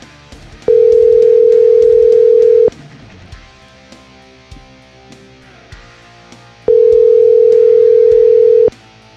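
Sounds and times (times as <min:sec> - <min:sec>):
ringback tones through a phone line on an outgoing call: 0:00.7 - 0:02.7, 0:06.7 - 0:08.7.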